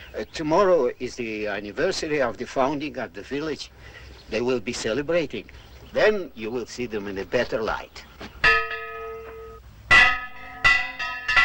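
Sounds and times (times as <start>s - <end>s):
speech: 0.1s - 8.4s
village church tower bell clanging as an alarm: 8.4s - 11.4s.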